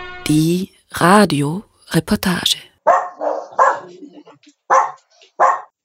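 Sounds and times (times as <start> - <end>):
speech: 0.3 - 2.6
shelter dog barking: 2.8 - 4.0, 4.7 - 5.8.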